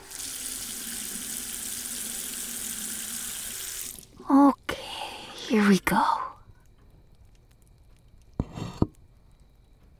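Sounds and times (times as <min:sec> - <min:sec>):
water running from a tap into a drinking bowl: 0:00.0 - 0:04.2
speech: 0:05.5 - 0:06.2.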